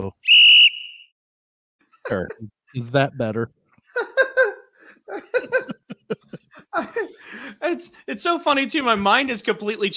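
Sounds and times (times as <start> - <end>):
sharp shrill whistle blow: 0.2 - 1.2
laughter: 1.9 - 3.0, 3.8 - 8.0
speech: 2.1 - 3.6, 7.5 - 9.9.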